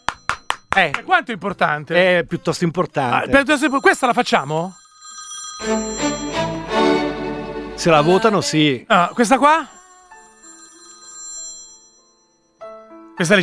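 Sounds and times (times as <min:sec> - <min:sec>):
speech: 0:00.8 - 0:04.8, 0:05.6 - 0:06.1, 0:07.8 - 0:09.8, 0:13.2 - 0:13.4
telephone ringing with steady tonal ringtone: 0:03.4 - 0:07.4, 0:08.1 - 0:13.0.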